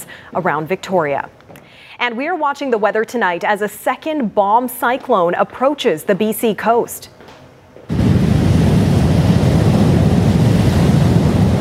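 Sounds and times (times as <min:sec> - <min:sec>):
speech: 0:00.3 - 0:01.4, 0:02.0 - 0:07.2
heavy storm surf crashing against a rocky shore: 0:07.9 - 0:11.6.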